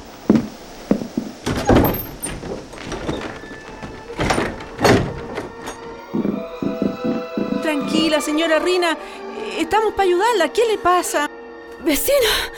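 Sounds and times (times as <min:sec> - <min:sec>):
dull thumps and knocks: 0:00.2 - 0:08.1
house door being opened by a child: 0:00.3 - 0:08.0
speech: 0:08.1 - 0:11.3, 0:11.9 - 0:12.5.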